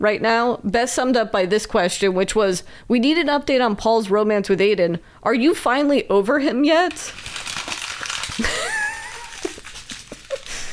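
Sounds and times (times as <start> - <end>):
speech: 0.0 - 7.5, 8.4 - 8.6
paper page being crumpled: 6.9 - 10.7.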